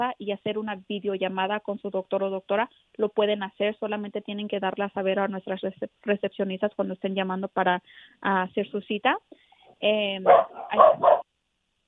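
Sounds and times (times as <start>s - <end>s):
speech: 0.0s - 11.3s
dogs barking: 10.3s - 11.2s.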